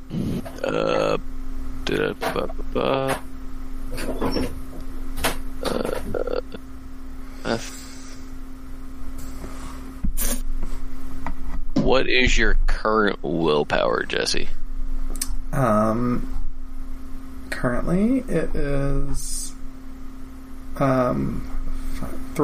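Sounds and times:
throaty bursts: 0.0s - 1.2s, 1.9s - 3.2s, 5.6s - 6.6s, 7.4s - 8.3s
steady low electrical hum: 0.0s - 22.4s
loud burp: 0.1s - 1.2s, 1.9s - 3.2s, 5.6s - 6.6s
speech: 0.7s - 1.3s, 1.9s - 3.3s, 4.0s - 4.6s, 12.0s - 14.6s, 15.6s - 16.4s, 17.6s - 19.5s, 20.8s - 22.4s.

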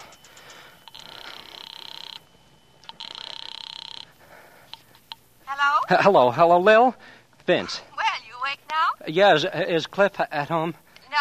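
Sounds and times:
telephone ringing in long trilling bursts: 0.0s - 6.0s
speech: 5.9s - 7.9s, 9.0s - 11.1s.

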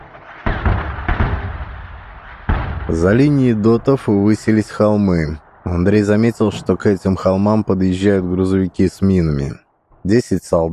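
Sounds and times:
artillery fire with shells bursting: 0.0s - 7.6s
low noise: 2.8s - 10.7s
speech: 2.9s - 10.7s.

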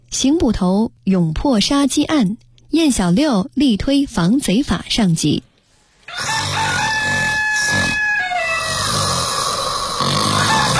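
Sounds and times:
speech: 0.2s - 5.5s
rooster crowing: 6.1s - 10.7s
person snoring: 6.2s - 10.7s.

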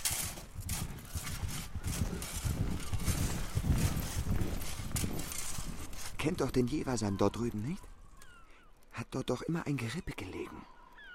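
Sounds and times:
white horse hooves clip-clopping as it approaches: 0.0s - 6.3s
speech: 6.2s - 7.9s, 9.0s - 10.8s.

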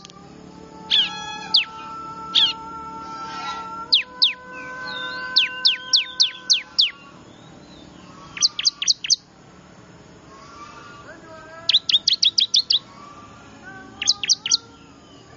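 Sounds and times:
bar-winged prinia sharp high downward-slurred chirps: 0.0s - 0.2s, 0.9s - 2.6s, 3.5s - 9.3s, 10.4s - 13.1s, 13.7s - 15.3s.

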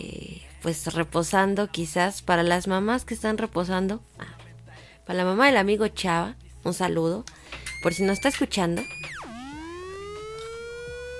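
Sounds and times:
speech: 0.6s - 4.1s, 5.1s - 9.0s
emergency siren wailing: 7.7s - 11.1s.

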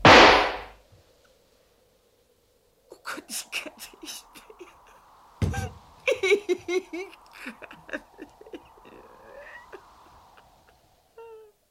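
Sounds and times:
rifle shot: 0.0s - 0.7s
speech: 3.2s - 3.9s
laughter: 3.3s - 10.4s.

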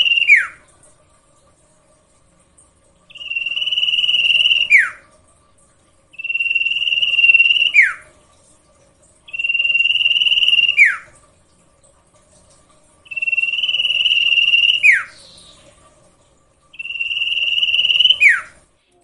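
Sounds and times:
bird song buzzy trill ending in a downward whistled slur: 0.0s - 0.6s, 3.1s - 5.0s, 6.2s - 8.0s, 9.3s - 11.1s, 13.1s - 15.6s, 16.8s - 18.5s.

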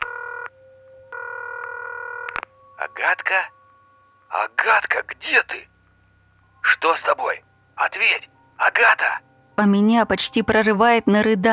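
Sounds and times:
telephone ringback tone after a number is dialed: 0.0s - 2.8s
speech: 2.8s - 3.6s, 4.3s - 5.7s, 6.6s - 11.5s.

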